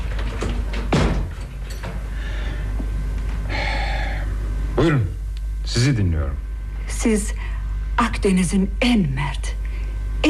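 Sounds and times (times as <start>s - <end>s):
steady low hum: 0.0s - 10.2s
door swinging shut with a solid thud: 0.4s - 1.4s
speech: 4.8s - 5.1s, 5.7s - 6.4s, 7.0s - 9.6s.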